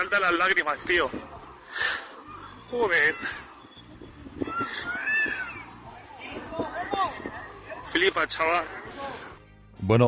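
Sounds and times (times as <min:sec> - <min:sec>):
speech: 0:00.0 - 0:02.0, 0:02.7 - 0:03.5, 0:07.8 - 0:10.0
frightened child crying inside a car: 0:04.4 - 0:05.7.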